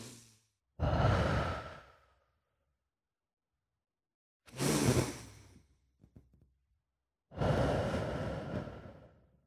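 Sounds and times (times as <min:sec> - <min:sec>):
deep breaths: 0:00.8 - 0:02.3, 0:07.3 - 0:09.3.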